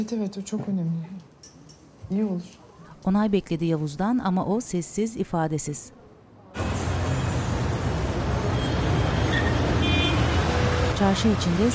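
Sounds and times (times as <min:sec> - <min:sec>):
speech: 0:00.0 - 0:01.3, 0:02.1 - 0:06.7, 0:11.0 - 0:11.7
rumble of evening street traffic with cars and engines going by: 0:06.0 - 0:11.7.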